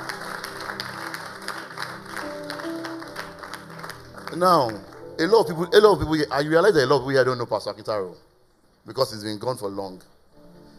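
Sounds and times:
crowd clapping: 0:00.0 - 0:05.6
speech: 0:04.4 - 0:10.1.

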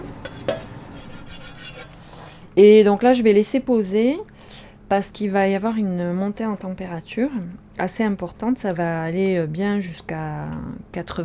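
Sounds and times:
granules being stirred into hydrolat in a bowl for homemade laundry detergent: 0:00.2 - 0:02.0
speech: 0:02.6 - 0:04.3, 0:04.9 - 0:11.2.

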